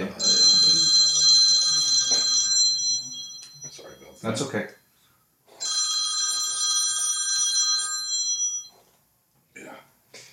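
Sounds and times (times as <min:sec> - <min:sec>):
telephone ringing with a bright buzzing electronic tone: 0:00.1 - 0:04.2, 0:05.5 - 0:08.9
speech: 0:04.2 - 0:04.8.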